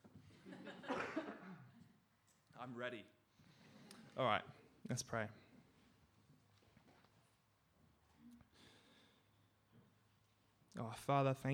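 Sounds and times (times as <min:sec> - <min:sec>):
throat-clearing cough: 0:00.8 - 0:01.8
speech: 0:02.6 - 0:03.2, 0:04.2 - 0:05.4, 0:10.8 - 0:11.5.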